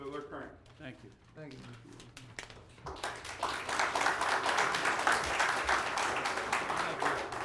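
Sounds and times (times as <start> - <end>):
speech: 0.5 - 3.3
audience at a hearing applauding: 2.8 - 7.4.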